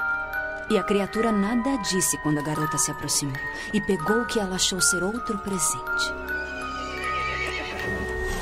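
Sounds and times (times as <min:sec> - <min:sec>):
speech: 0:00.7 - 0:06.5
horse neighing: 0:06.3 - 0:08.3.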